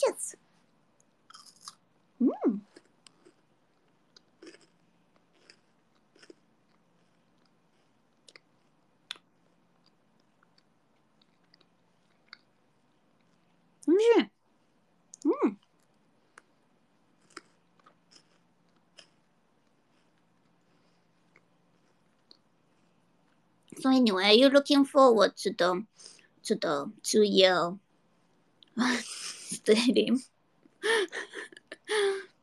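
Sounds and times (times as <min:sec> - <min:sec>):
speech: 0:00.0 - 0:00.4, 0:02.2 - 0:02.7, 0:23.9 - 0:27.8, 0:28.8 - 0:32.3
chewing on a chocolate bar with crunching bites: 0:01.0 - 0:01.8, 0:02.6 - 0:12.6, 0:17.1 - 0:20.6.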